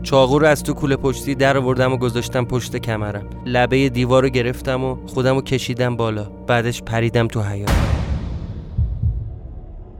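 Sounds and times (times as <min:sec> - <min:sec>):
speech: 0:00.0 - 0:08.0
deep heartbeat thumps in lub-dub pairs: 0:07.7 - 0:09.9
low rumbling drone: 0:07.7 - 0:09.9.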